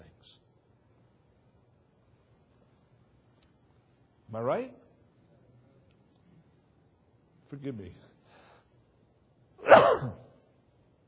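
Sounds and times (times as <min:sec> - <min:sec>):
speech: 0:04.3 - 0:04.8, 0:07.5 - 0:08.1, 0:09.6 - 0:10.2
person sneezing: 0:09.6 - 0:10.4.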